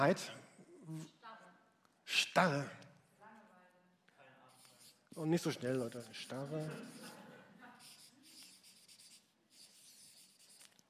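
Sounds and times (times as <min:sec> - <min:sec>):
speech: 0:00.0 - 0:01.2, 0:02.1 - 0:02.8, 0:05.2 - 0:07.2
writing on a board: 0:04.5 - 0:07.2, 0:07.8 - 0:10.8.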